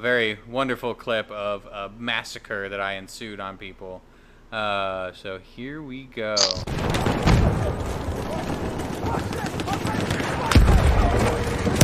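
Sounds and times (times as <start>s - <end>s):
speech: 0.0s - 6.8s
grenade explosions in a video game: 6.4s - 11.8s.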